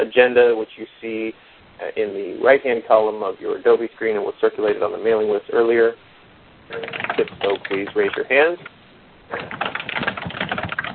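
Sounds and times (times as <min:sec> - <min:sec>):
speech: 0:00.0 - 0:06.1, 0:06.7 - 0:10.1
computer keyboard typing during a conference call: 0:06.7 - 0:08.7, 0:09.3 - 0:10.9.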